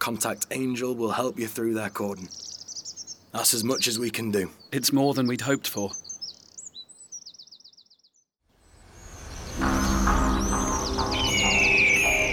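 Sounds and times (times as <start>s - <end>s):
speech: 0.0s - 2.6s, 3.3s - 6.1s
dense chorus of many birds chirping and calling: 0.0s - 12.3s
high wavering bird trills: 2.2s - 4.0s, 5.9s - 8.2s, 8.8s - 12.3s
steady rushing background: 8.8s - 12.3s.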